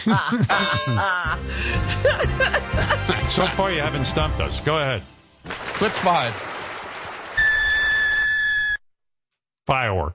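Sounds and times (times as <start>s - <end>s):
laughter: 0.0s - 3.9s
speech: 0.0s - 6.5s, 9.7s - 10.1s
firework whistling: 7.2s - 8.8s.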